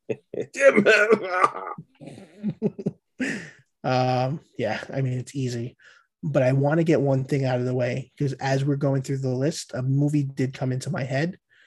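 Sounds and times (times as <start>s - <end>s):
speech: 0.1s - 11.4s
voice imitating strained coughing and throat clearing: 0.6s - 2.6s.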